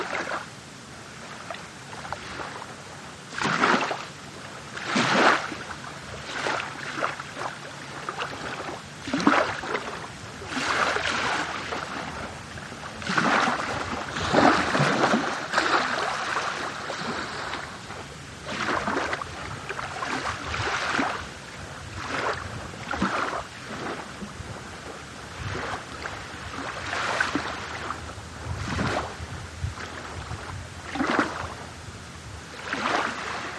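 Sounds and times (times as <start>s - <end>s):
small waves at the beach in Placencia Belize: 0.0s - 33.5s.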